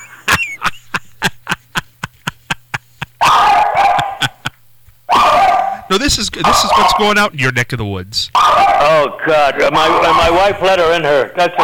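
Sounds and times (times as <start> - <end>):
laughter: 0.0 - 7.0
dog whining howl: 3.2 - 4.2, 5.1 - 5.9, 8.4 - 9.0
dog barking: 3.2 - 4.4, 5.1 - 7.0, 8.4 - 9.0
speech: 5.9 - 11.6.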